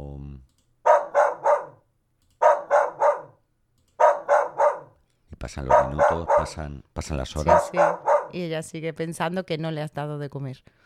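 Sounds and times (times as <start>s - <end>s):
dog barking: 0.8s - 3.4s, 4.0s - 5.0s, 5.7s - 6.6s, 7.4s - 8.4s
speech: 5.4s - 10.8s.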